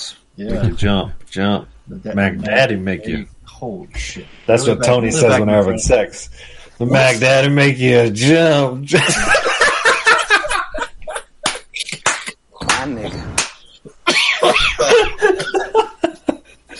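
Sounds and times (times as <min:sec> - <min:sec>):
speech: 0:00.1 - 0:09.5
laughter: 0:08.9 - 0:12.2, 0:14.3 - 0:16.7
person coughing: 0:14.0 - 0:15.7.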